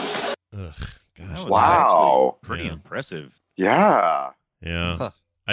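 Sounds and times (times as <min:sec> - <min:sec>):
over-the-top movie-style scream: 0:01.5 - 0:02.3, 0:03.6 - 0:04.3
speech: 0:01.5 - 0:05.5.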